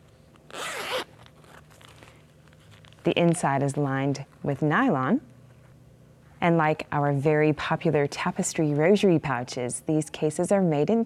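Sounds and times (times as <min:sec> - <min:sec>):
zipper on a tapestry tablet Bible case being pulled open: 0:00.5 - 0:01.7
speech: 0:03.0 - 0:05.3, 0:06.4 - 0:11.0.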